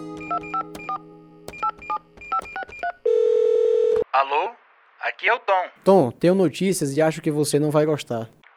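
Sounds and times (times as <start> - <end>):
telephone dial tone: 0.2 - 4.0
telephone keypad beeps dialing a number: 0.2 - 4.0
speech: 4.2 - 8.4.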